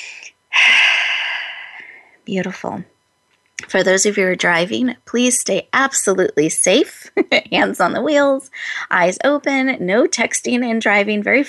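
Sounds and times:
deep breath during a guided mindfulness exercise: 0.0s - 2.2s
speech: 2.3s - 3.0s, 3.7s - 11.4s.

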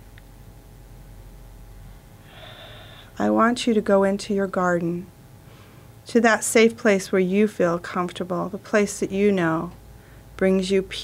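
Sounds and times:
soft hum: 0.0s - 11.0s
deep belly inhale in a guided breathing exercise: 2.2s - 3.2s
speech: 3.2s - 5.2s, 6.1s - 9.8s, 10.4s - 11.0s.

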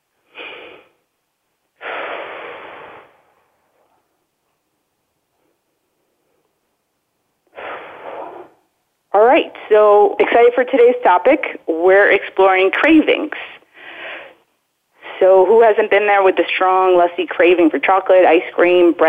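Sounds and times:
deep breaths during a calming exercise: 0.2s - 1.1s, 1.8s - 3.9s, 7.5s - 8.6s, 13.6s - 15.2s
speech: 9.4s - 13.6s, 15.2s - 19.0s.

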